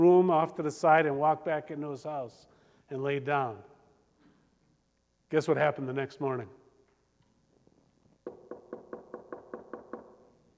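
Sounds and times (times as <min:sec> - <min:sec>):
speech: 0:00.0 - 0:03.7, 0:05.3 - 0:06.6
knocking on a door: 0:08.2 - 0:10.3.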